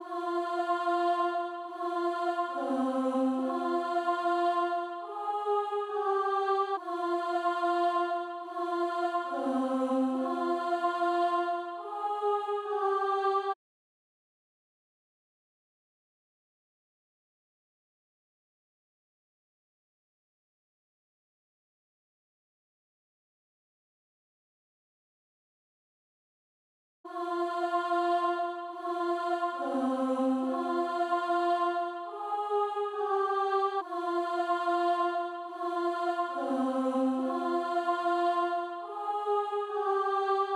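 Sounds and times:
142 BPM F minor choir melody loop: 0:00.0 - 0:13.6, 0:27.1 - 0:40.5.

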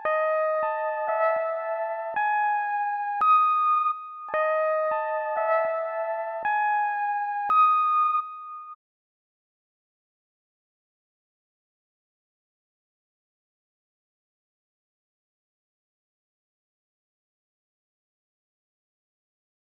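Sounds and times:
112 BPM C sharp minor trap guitar melody loop: 0:00.0 - 0:08.3.

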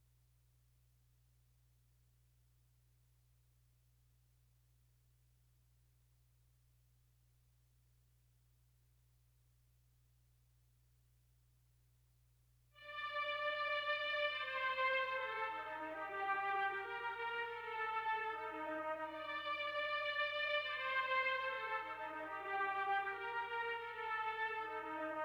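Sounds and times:
dark D minor strings melody loop at 152 BPM: 0:12.8 - 0:25.2.

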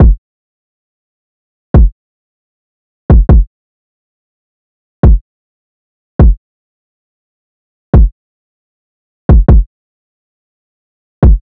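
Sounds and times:
trap drum loop with kick drum: 0:00.0 - 0:00.2, 0:01.8 - 0:02.0, 0:03.1 - 0:03.5, 0:05.0 - 0:05.2, 0:06.2 - 0:06.4, 0:08.0 - 0:08.2, 0:09.3 - 0:09.7, 0:11.2 - 0:11.4.

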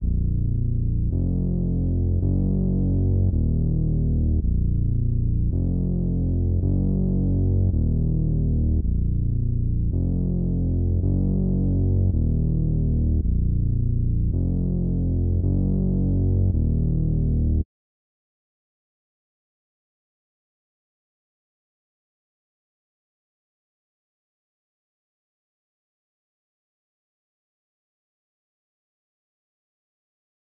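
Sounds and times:
bass melody loop in A sharp minor: 0:00.0 - 0:17.6.

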